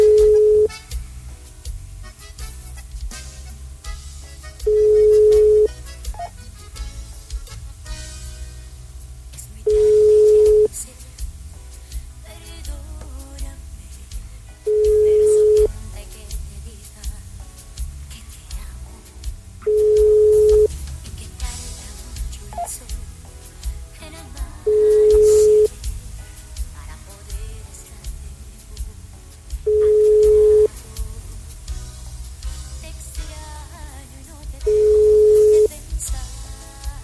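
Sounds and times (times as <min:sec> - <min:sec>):
ringback tone of an unanswered telephone call after a redial: 0:00.0 - 0:00.7, 0:04.7 - 0:05.7, 0:09.8 - 0:10.7, 0:14.7 - 0:15.7, 0:19.7 - 0:20.7, 0:24.7 - 0:25.7, 0:29.7 - 0:30.7, 0:34.7 - 0:35.7.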